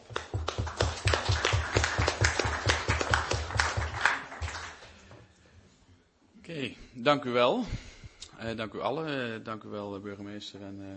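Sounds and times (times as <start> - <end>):
audience applause in council chamber: 0.0 - 5.0
speech: 7.0 - 7.8, 8.4 - 10.9.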